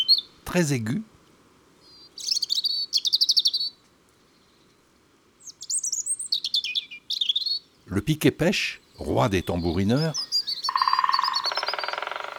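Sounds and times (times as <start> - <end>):
European robin singing: 0.0 - 0.6, 1.8 - 3.8, 5.4 - 12.3
speech: 0.5 - 1.1, 7.9 - 10.2.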